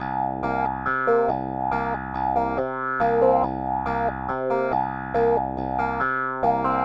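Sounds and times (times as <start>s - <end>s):
bass: 0.0s - 6.8s
funk piano in second line style: 0.0s - 6.8s.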